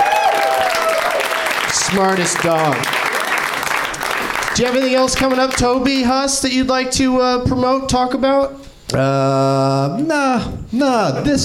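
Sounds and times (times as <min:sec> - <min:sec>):
audience applauding during a comedy interview: 0:00.0 - 0:06.2
speech: 0:01.9 - 0:03.0, 0:04.6 - 0:11.4.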